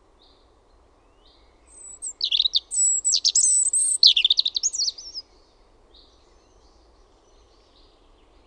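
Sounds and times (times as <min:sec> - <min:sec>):
European robin singing: 0:01.7 - 0:05.2.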